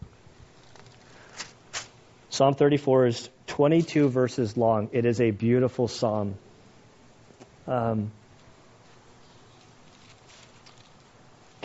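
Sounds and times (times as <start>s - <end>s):
Bible pages turning: 0.5s - 2.0s, 9.4s - 11.2s
speech: 2.4s - 6.4s, 7.7s - 8.2s.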